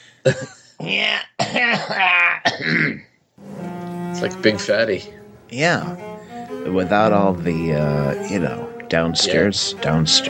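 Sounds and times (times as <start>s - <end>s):
speech: 0.2s - 3.1s, 4.2s - 10.2s
person clearing throat: 0.3s - 3.2s.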